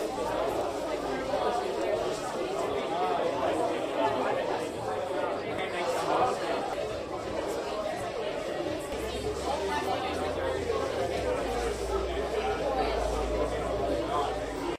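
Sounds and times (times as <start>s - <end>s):
indoor crowd ambience: 0.0s - 14.7s.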